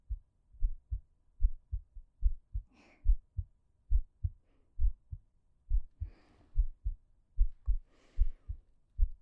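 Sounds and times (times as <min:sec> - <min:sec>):
heartbeat thumping: 0:00.1 - 0:09.2.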